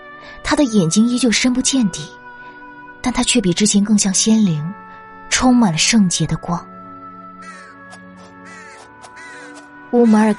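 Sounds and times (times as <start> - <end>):
speech: 0.2 - 2.2, 3.0 - 6.7, 9.9 - 10.3
crows cawing harshly: 7.1 - 10.3.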